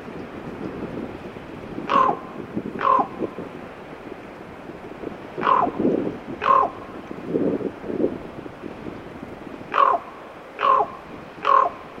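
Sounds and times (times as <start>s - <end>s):
common raven croaking in Teller, Alaska: 1.9s - 3.2s, 5.4s - 5.8s, 6.4s - 6.8s, 9.7s - 11.8s.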